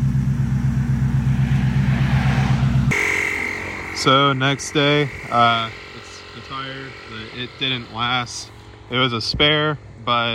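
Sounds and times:
cars driving past on a road: 0.0 - 10.3
different quieter sound: 0.4 - 9.2
speech: 4.0 - 5.8, 6.5 - 10.3.

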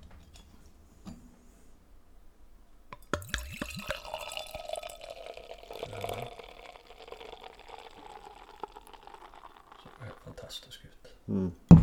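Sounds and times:
beer being poured into a glass: 3.0 - 10.6
speech: 11.3 - 11.6.

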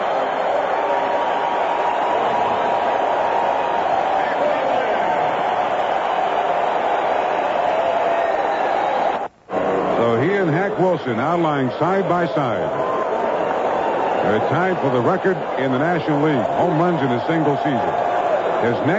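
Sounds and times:
huge stadium crowd roaring and cheering after home run: 0.0 - 18.9
speech: 10.9 - 12.9, 14.2 - 18.9.

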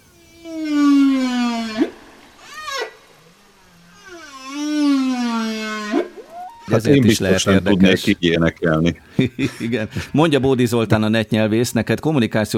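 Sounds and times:
long wavering whale calls with rich harmonics: 0.0 - 7.8
laughter: 6.5 - 10.9
speech: 6.7 - 12.5.

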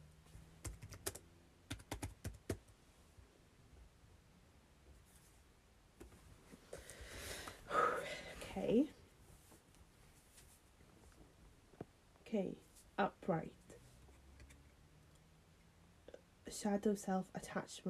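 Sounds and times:
typing on a computer keyboard: 0.6 - 2.7
breathy rustling sounds: 6.4 - 11.4
speech: 8.6 - 9.0, 12.4 - 13.6, 16.6 - 17.8.

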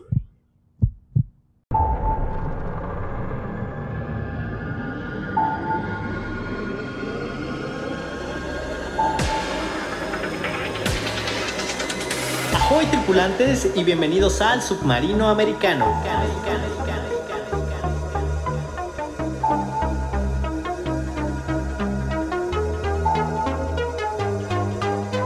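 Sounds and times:
deep heartbeat thumps: 0.0 - 1.4
loud sustained rumbling noise with ringing tones: 1.7 - 25.2
speech: 12.8 - 16.8.

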